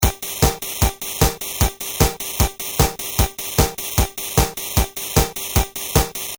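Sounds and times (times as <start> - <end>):
drum machine rhythm pattern: 0.0 - 6.3.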